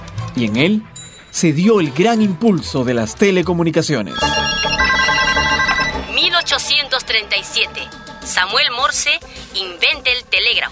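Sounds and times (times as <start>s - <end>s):
speech: 0.4s - 4.6s, 6.6s - 10.7s
old telephone bell ringing sound effect: 4.1s - 9.2s.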